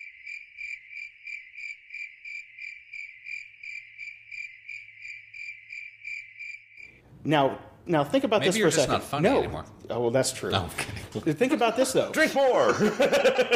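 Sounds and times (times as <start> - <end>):
cricket chirping: 0.0 - 7.0
speech: 7.2 - 13.5
laughter: 10.7 - 13.5.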